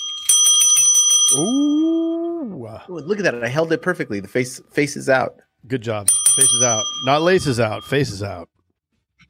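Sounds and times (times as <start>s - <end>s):
bicycle bell ringing: 0.0s - 1.9s, 6.1s - 8.1s
speech: 1.3s - 8.6s.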